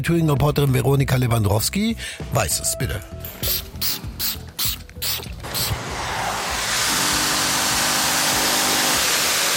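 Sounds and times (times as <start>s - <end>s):
speech: 0.0s - 4.4s
spraying bursts on chair upholstery: 3.4s - 9.5s
steam vacuum roaring on chair upholstery: 5.4s - 9.5s.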